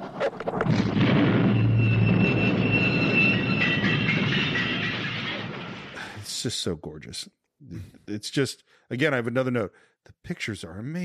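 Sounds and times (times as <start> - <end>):
train being blown up by explosives: 0.0 - 6.2
faint metallic whine: 1.2 - 6.0
speech: 6.4 - 11.0.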